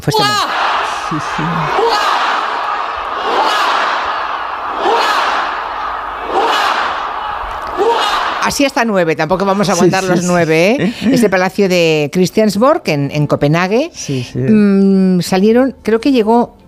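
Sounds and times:
speech: 0.0s - 2.2s, 8.4s - 16.6s
large crowd shouting traditional hurrah cheers: 0.0s - 8.6s
laughter: 0.6s - 8.5s, 9.5s - 11.3s.

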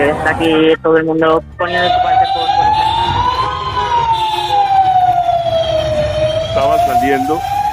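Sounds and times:
speech: 0.0s - 2.5s, 6.6s - 7.5s
low rumble of engines: 0.0s - 7.7s
street noise: 0.0s - 7.7s
emergency vehicle siren wailing: 1.6s - 7.7s.

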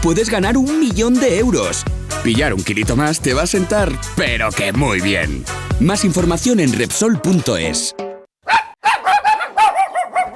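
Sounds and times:
speech: 0.0s - 8.0s
dog barking: 8.4s - 10.3s.

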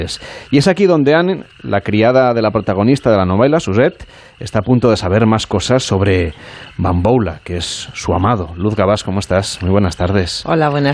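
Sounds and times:
frogs croaking in a Louisiana swamp: 0.0s - 10.9s
speech: 0.0s - 10.9s.

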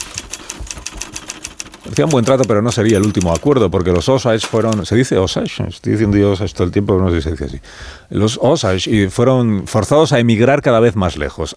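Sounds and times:
typewriter key strikes clacking: 0.0s - 5.1s
speech: 1.8s - 11.5s.

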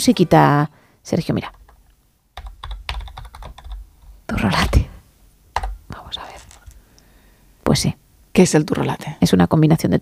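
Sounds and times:
speech: 0.0s - 1.6s, 4.3s - 4.9s, 7.7s - 9.9s
rapid typing on a computer keyboard: 1.4s - 1.8s, 2.4s - 4.1s, 5.6s - 6.8s.

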